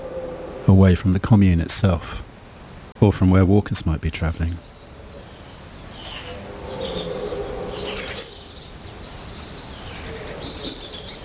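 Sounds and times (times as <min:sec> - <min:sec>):
speech: 0:00.7 - 0:02.3, 0:03.0 - 0:04.7
long-tailed tit calls: 0:03.3 - 0:11.2.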